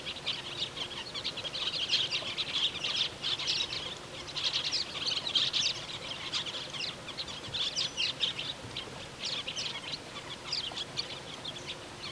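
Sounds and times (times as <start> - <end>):
Andean parakeets chirping and chattering: 0.0 - 12.0
soft background noise: 0.0 - 12.0.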